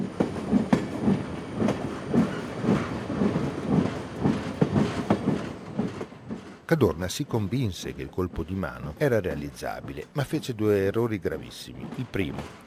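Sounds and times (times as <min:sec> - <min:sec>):
train running on rails: 0:00.0 - 0:12.6
train wheels clicking over track joints: 0:00.2 - 0:12.6
speech: 0:06.7 - 0:12.6.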